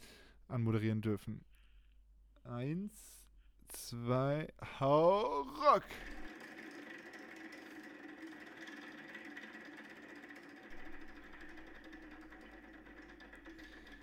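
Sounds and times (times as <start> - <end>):
speech: 0.5 - 1.5, 2.5 - 6.2
prize wheel spinning with rapid rattling whir: 5.0 - 14.0.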